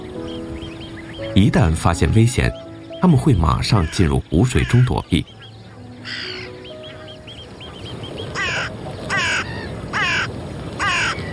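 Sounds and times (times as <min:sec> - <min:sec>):
softer higher bird chirps: 0:00.0 - 0:09.8
speech: 0:01.2 - 0:05.4, 0:06.0 - 0:06.4
crow cawing from a branch: 0:03.6 - 0:04.9, 0:05.7 - 0:07.2, 0:08.3 - 0:11.3.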